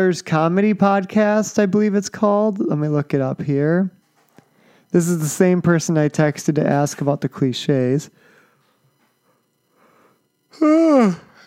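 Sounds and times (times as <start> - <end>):
speech: 0.0 - 4.0, 4.9 - 8.3, 10.5 - 11.3
loud yawn: 10.5 - 11.4.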